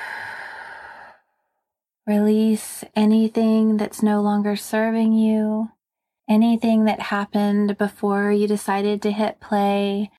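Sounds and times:
long breathy exhale blown out: 0.0s - 1.3s
speech: 2.1s - 10.1s.

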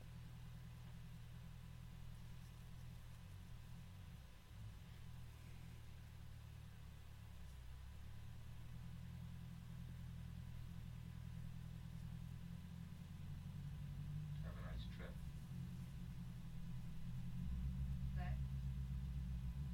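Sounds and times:
motorcycle engine idling: 0.0s - 19.7s.

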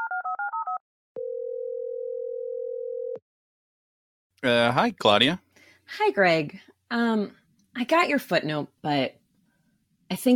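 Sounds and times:
steady telephone tone: 0.0s - 3.2s
speech: 4.4s - 9.2s, 10.1s - 10.3s.

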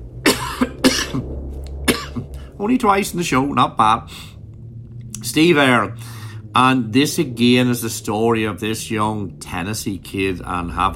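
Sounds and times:
low steady hum: 0.0s - 10.9s
person coughing: 0.2s - 1.3s, 1.9s - 2.3s
speech: 2.6s - 4.3s, 5.3s - 10.9s.

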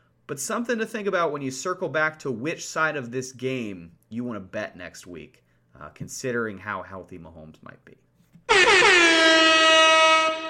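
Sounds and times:
speech: 0.3s - 9.5s
air horn blast: 8.5s - 10.4s.

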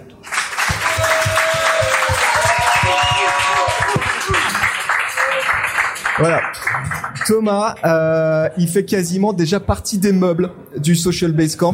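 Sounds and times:
crowd applauding: 0.2s - 7.9s
cheers and voices: 0.7s - 4.6s
speech: 6.2s - 11.7s.

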